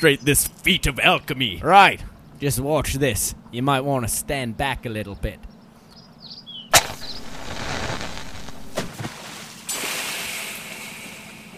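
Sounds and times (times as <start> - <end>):
speech: 0.0 - 5.5
crackle of a burning flare: 6.7 - 11.5
burning underwater flare fizzing and hissing as it is snuffed out in water: 6.8 - 11.5
sharp splash of a flare plunged into water: 8.0 - 11.2.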